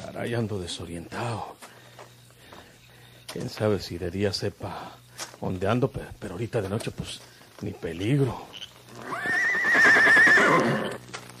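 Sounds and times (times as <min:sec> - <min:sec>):
speech: 0:00.2 - 0:01.7, 0:03.3 - 0:09.3
horse neighing: 0:08.9 - 0:11.0.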